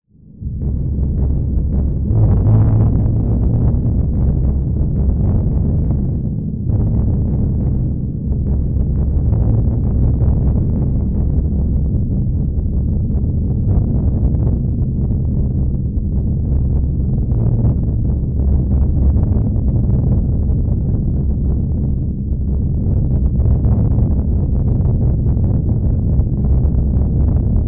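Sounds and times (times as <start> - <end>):
dark rumbling ambience: 0.1 - 27.6.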